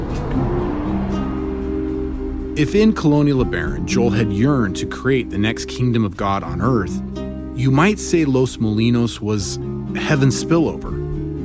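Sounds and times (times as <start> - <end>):
car driving on a road toward a small town in Baja California, Mexico: 0.0 - 4.3
speech: 2.6 - 11.0.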